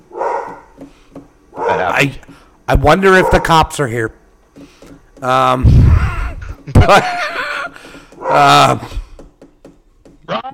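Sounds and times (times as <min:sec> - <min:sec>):
dog barking: 0:00.1 - 0:00.7, 0:01.5 - 0:02.0, 0:03.1 - 0:03.7, 0:08.2 - 0:08.5
dog yipping: 0:00.1 - 0:00.7, 0:01.6 - 0:01.9
speech: 0:01.8 - 0:04.2, 0:05.2 - 0:06.0, 0:06.8 - 0:07.4, 0:08.3 - 0:09.0
laughter: 0:05.6 - 0:08.9.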